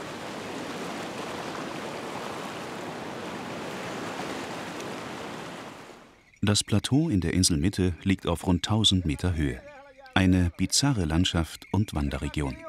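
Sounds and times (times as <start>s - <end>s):
sea waves in natural rock pools between coastal rocks: 0.0s - 6.2s
speech: 6.4s - 12.6s.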